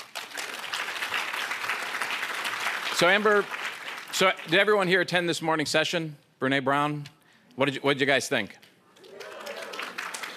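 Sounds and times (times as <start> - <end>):
conference session audience applause: 0.0 - 4.5, 9.0 - 10.3
speech: 3.0 - 8.6.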